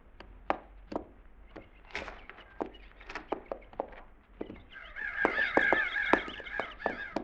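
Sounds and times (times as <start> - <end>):
crows cawing: 1.6 - 3.7, 4.4 - 7.2.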